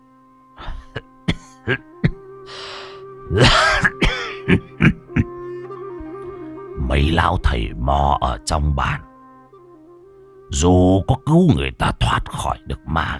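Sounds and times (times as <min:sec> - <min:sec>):
old man coughing hoarsely in a stone cave: 0:00.6 - 0:02.2, 0:03.3 - 0:05.3
speech: 0:01.7 - 0:02.0, 0:03.3 - 0:03.7, 0:06.9 - 0:09.1, 0:10.5 - 0:13.1.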